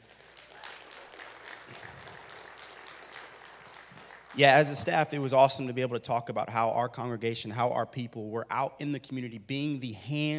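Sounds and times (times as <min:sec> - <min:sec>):
crowd applauding in a large room: 0:00.0 - 0:05.3
speech: 0:04.4 - 0:10.3.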